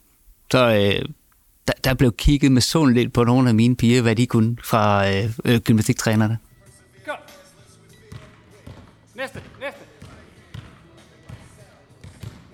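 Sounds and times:
speech: 0.5 - 6.5
basketballs thumping against a hard gym floor during gymnastics drills: 8.1 - 12.5.

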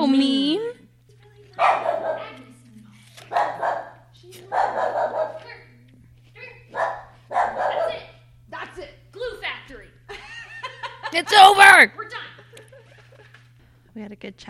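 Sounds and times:
speech: 0.0 - 0.8, 1.6 - 2.3, 11.1 - 12.2, 14.0 - 14.4
dog barking at a stranger: 1.6 - 2.6, 3.3 - 5.6, 6.7 - 8.2
laughter: 10.1 - 11.4, 12.3 - 13.5.

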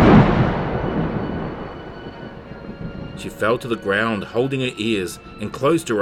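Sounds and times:
loud thunderclap rumbling: 0.0 - 6.0
speech: 3.2 - 6.0.

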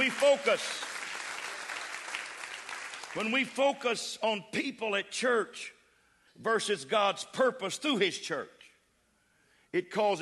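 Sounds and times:
church congregation clapping hands: 0.0 - 4.1
speech: 0.1 - 0.9, 3.1 - 5.8, 6.4 - 8.6, 9.7 - 10.1.

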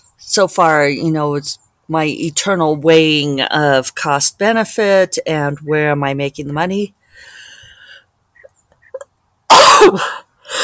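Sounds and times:
speech: 0.4 - 7.3, 9.5 - 10.2
stifled abortive sneeze: 9.5 - 10.2.

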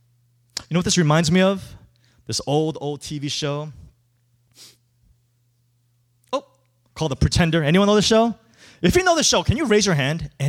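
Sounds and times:
steady low hum: 0.0 - 10.4
speech: 0.7 - 3.8, 6.3 - 10.4
audience member sneezing during a sermon: 4.6 - 4.8.

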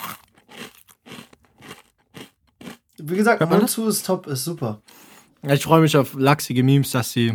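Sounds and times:
crisp baked cracker snacks being chewed: 0.0 - 3.0
speech: 3.0 - 7.3.

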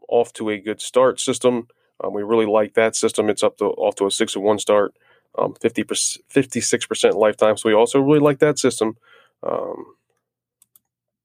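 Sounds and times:
speech: 0.1 - 10.0
computer mouse or keyboard clicks: 10.1 - 10.9.

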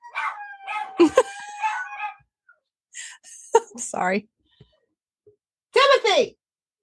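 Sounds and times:
dog howling: 0.0 - 2.3
speech: 1.0 - 1.3, 4.0 - 4.4, 6.2 - 6.4.

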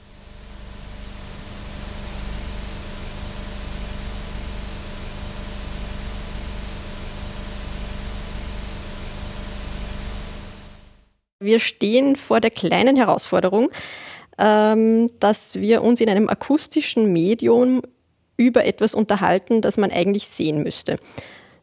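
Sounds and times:
faint low hum: 0.0 - 11.0
VHS tape static hiss: 0.0 - 11.1
speech: 11.4 - 21.6.

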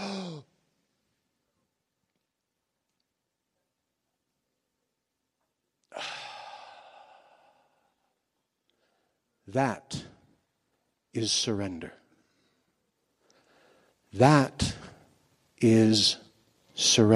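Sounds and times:
person taking a deep breath with sighing exhale: 5.9 - 9.2
speech: 9.5 - 10.1, 11.1 - 12.0, 14.1 - 14.8, 15.6 - 16.2, 16.8 - 17.1.

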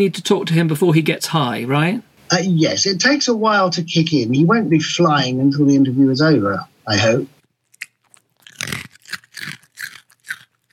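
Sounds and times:
speech: 0.0 - 7.4
dog crunching and chewing a hard biscuit: 7.4 - 10.7.

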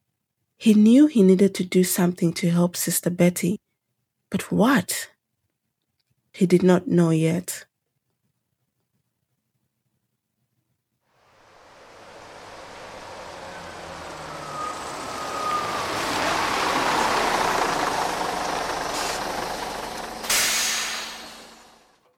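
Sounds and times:
speech: 0.6 - 3.7, 4.3 - 5.1, 6.4 - 7.7
bus rumbling and slowing: 11.2 - 22.0
faint high brake squeal of a bus: 11.3 - 21.9
bus air brake hiss: 18.8 - 21.8.

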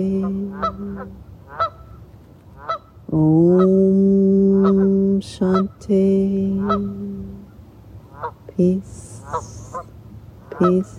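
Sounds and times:
geese honking: 0.0 - 3.0, 4.5 - 5.8, 6.6 - 7.1, 8.1 - 8.4, 9.0 - 10.9
low hum: 0.0 - 10.9
speech: 3.2 - 4.0, 5.2 - 7.0, 8.2 - 9.6, 10.6 - 10.9.

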